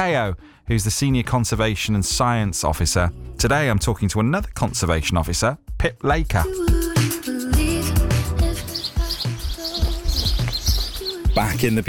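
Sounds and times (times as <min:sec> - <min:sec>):
speech: 0:00.0 - 0:07.3, 0:11.4 - 0:11.8
birds chirping and trilling outdoors in a valley: 0:08.0 - 0:11.8.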